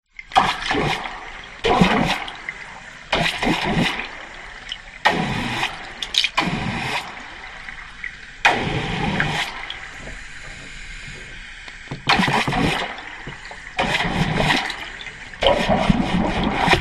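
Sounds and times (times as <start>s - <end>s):
short bursts of water spray from hose in deep water, underwater hydrophone: 0.3s - 16.7s.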